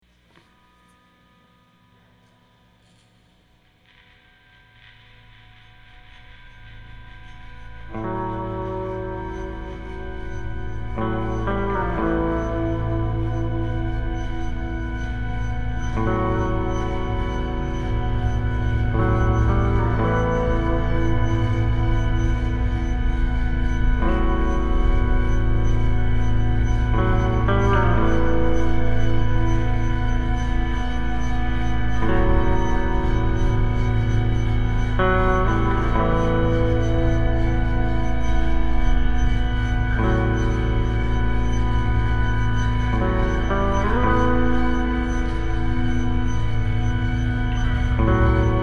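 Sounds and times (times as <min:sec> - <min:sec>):
eerie guitar instrumental: 0:04.1 - 0:48.6.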